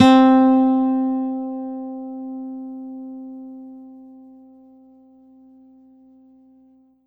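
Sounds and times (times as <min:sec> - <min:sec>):
flamenco guitar note C4 from a synthesizer module: 0:00.0 - 0:04.8.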